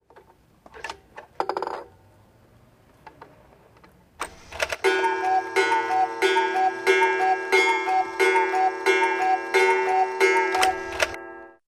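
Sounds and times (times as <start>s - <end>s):
cuckoo in the wall clock: 4.7s - 11.5s.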